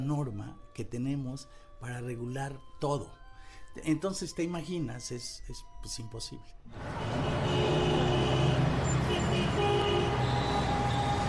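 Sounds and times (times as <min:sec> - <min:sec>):
speech: 0:00.0 - 0:08.0
dense city traffic rumbling: 0:06.7 - 0:11.2
car horns tooting: 0:06.8 - 0:11.2.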